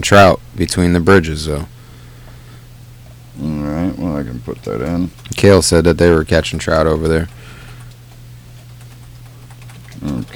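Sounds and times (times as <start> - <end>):
speech: 0.0 - 1.8, 3.4 - 7.4
steady low hum: 0.0 - 10.3
typing on a computer keyboard: 6.8 - 10.3.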